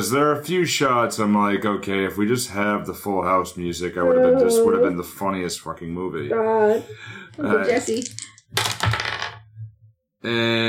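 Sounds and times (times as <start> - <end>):
speech: 0.0 - 8.7, 10.2 - 10.6
dice clattering on a hard surface: 7.6 - 9.4.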